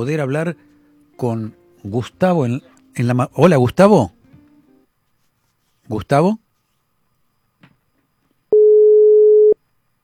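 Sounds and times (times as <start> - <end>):
speech: 0.0 - 4.2, 5.9 - 6.4
telephone ringing tone on a line: 8.5 - 9.6.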